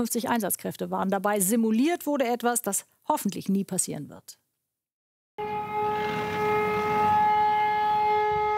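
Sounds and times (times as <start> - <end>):
speech: 0.0 - 4.4
loud emergency siren wailing at an airport emergency drill: 5.4 - 8.5.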